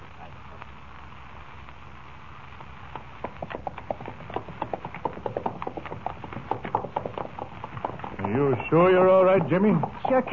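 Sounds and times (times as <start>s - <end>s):
hooves of a horse carrying two riders clip-clopping: 2.6s - 10.3s
speech: 8.6s - 10.3s.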